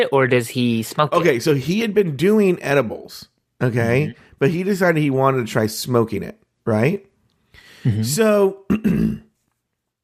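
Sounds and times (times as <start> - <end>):
speech: 0.0 - 7.1, 7.8 - 9.3
short rough throat clearing: 8.7 - 9.3.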